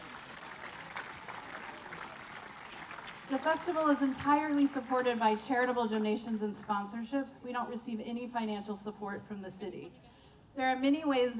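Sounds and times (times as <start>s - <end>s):
festival crowd applauding its sponsors: 0.0s - 5.7s
speech: 3.3s - 11.3s.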